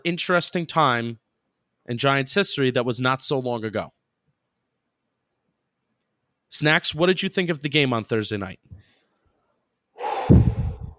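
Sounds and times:
speech: 0.0 - 1.2, 1.9 - 4.0, 6.5 - 8.9
very deep breath in and out: 10.0 - 10.9.

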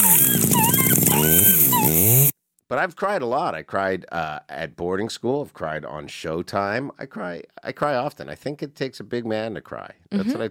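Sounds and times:
puppy whimpering: 0.0 - 2.3
speech: 2.7 - 10.4.

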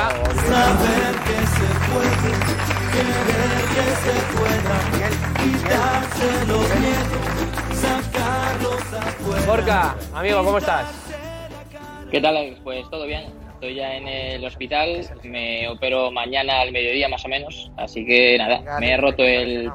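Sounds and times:
audience applause: 0.0 - 10.0
musical backing with steady bass notes: 0.1 - 12.2
speech: 9.7 - 11.0, 12.1 - 19.7.

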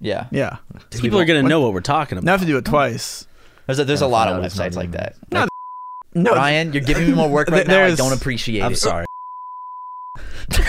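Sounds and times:
speech: 0.0 - 5.5, 6.2 - 9.1
censor bleep: 5.5 - 6.0, 9.1 - 10.2.

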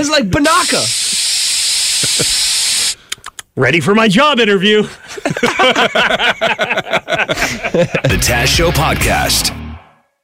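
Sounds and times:
speech: 0.0 - 1.2, 2.0 - 2.5, 3.6 - 9.6
spray bottle hissing with steady airy mist: 0.5 - 3.4
laughter: 5.0 - 8.5.

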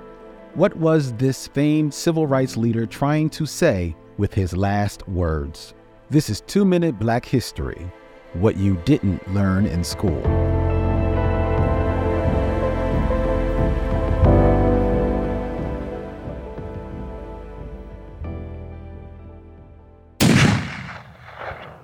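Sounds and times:
steady tonal music: 0.0 - 20.0
speech: 0.6 - 10.6
gunshot: 20.2 - 21.8.

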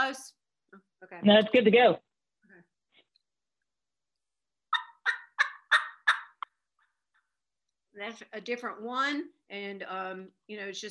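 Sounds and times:
speech: 0.1 - 2.1, 8.0 - 10.8
mouth turkey call imitating a hen's yelps: 4.7 - 6.5.

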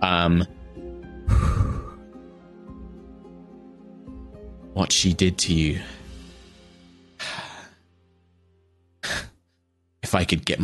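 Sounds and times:
speech: 0.2 - 0.6, 4.8 - 6.0, 10.1 - 10.6
rough heavy breath: 1.2 - 2.2, 7.2 - 7.8, 9.0 - 9.4
person acting out a voiced gasp: 1.3 - 2.1, 7.2 - 7.8, 9.0 - 9.4.

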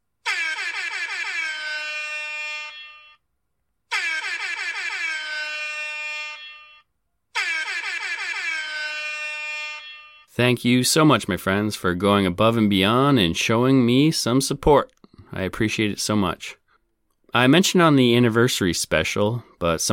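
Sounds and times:
air horn blasts: 0.2 - 3.2, 3.9 - 10.4
speech: 10.4 - 16.6, 17.3 - 19.9.

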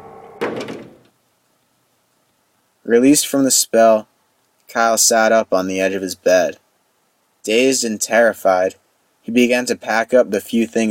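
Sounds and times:
door closing with whining hinges: 0.0 - 1.1
speech: 2.9 - 4.1, 4.7 - 6.6, 7.4 - 10.8.

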